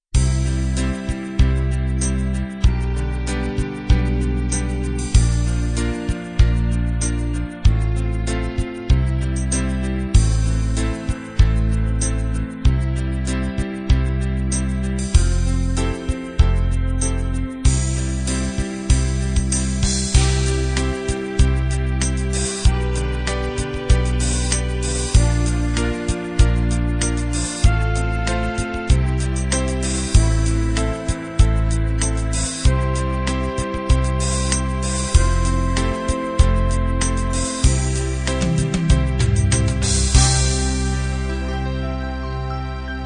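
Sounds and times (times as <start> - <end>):
love ballad: 0.2 - 43.0.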